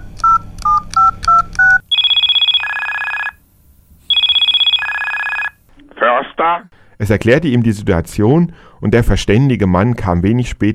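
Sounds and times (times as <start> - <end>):
loud electronic mobile phone ring in two-tone bursts: 0.2 - 3.4, 4.1 - 5.6
mobile phone dialing tones: 0.2 - 3.4, 4.1 - 6.3
speech: 6.5 - 10.7.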